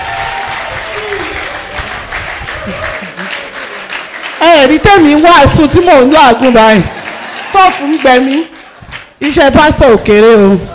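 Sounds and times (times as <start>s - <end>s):
room full of people applauding: 0.0s - 5.3s, 6.4s - 9.2s
speech: 4.6s - 7.0s, 7.6s - 8.5s, 9.2s - 10.7s.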